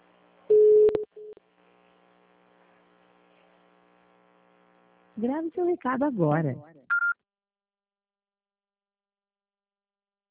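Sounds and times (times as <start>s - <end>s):
busy tone on a VoIP phone call: 0.5s - 1.4s, 6.9s - 7.2s
speech: 5.2s - 6.7s.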